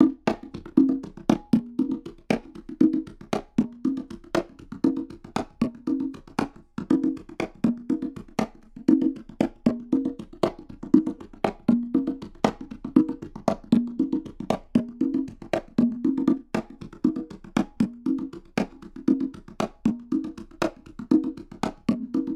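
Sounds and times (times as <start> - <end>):
congas: 0.0 - 22.3.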